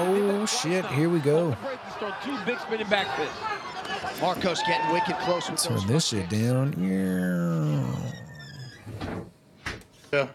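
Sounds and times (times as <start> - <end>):
speech: 0.4 - 8.3, 10.1 - 10.3
dog growling: 6.7 - 8.9.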